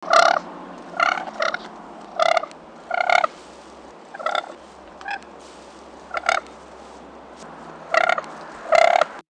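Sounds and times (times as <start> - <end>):
Siberian crane contact call: 0.0 - 9.2.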